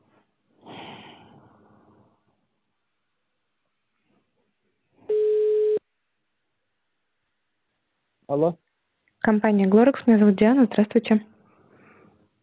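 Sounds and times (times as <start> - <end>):
ringback tone on an outgoing phone call: 5.1 - 5.8
speech: 8.3 - 8.6, 9.2 - 11.3.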